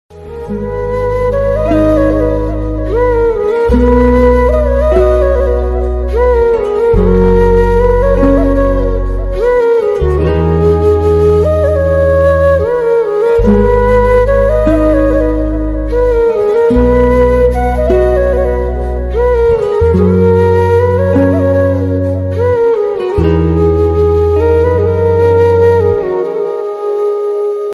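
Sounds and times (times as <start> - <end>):
sad flute background music: 0.1 - 27.7.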